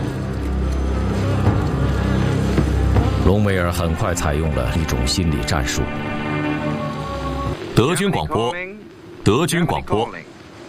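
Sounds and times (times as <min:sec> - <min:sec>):
flies buzzing: 0:00.0 - 0:08.0
speech: 0:03.3 - 0:06.2, 0:07.8 - 0:10.3.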